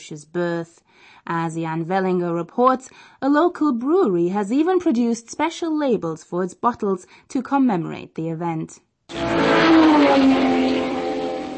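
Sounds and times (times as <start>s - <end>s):
speech: 0.0s - 10.7s
Porsche sports car engine revving: 9.1s - 11.5s.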